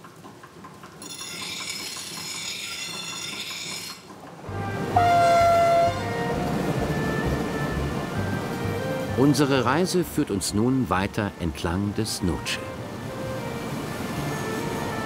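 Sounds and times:
train running on rails: 0.0s - 15.0s
horn blast: 4.5s - 9.6s
speech: 9.2s - 12.7s.

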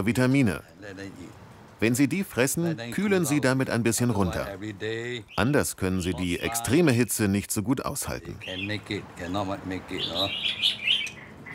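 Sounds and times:
speech: 0.0s - 10.9s
many birds chirping and singing in a front garden: 2.9s - 6.8s, 8.2s - 11.5s.

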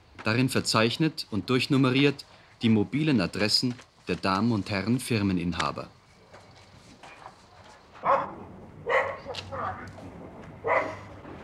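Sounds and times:
speech: 0.2s - 6.0s
dog barking: 8.0s - 9.9s, 10.6s - 11.1s.

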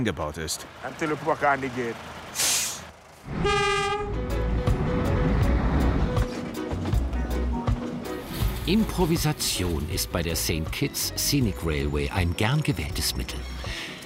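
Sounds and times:
speech: 0.0s - 2.5s, 3.2s - 3.8s, 8.7s - 13.9s
heavy truck rumbling and idling at a railway crossing on St. Kitts: 0.0s - 14.0s
sharp hiss of truck air brakes: 2.3s - 3.0s
brief blaring truck horn: 3.3s - 5.0s.

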